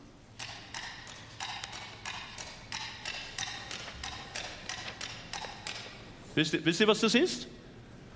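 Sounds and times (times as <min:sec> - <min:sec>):
coconut shells knocked together imitating horse hooves clip-clopping: 0:00.4 - 0:06.0
speech: 0:06.4 - 0:07.6.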